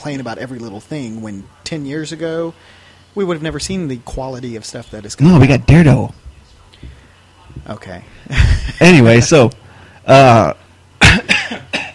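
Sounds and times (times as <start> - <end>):
speech: 0.0 - 6.2, 7.7 - 10.6
harsh throaty coughs: 11.0 - 11.9.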